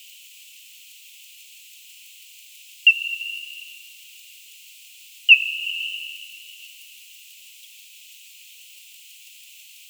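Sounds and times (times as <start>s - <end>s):
Nyctalus leisleri hunting calls in Tenerife: 2.9s - 3.8s, 5.3s - 6.5s.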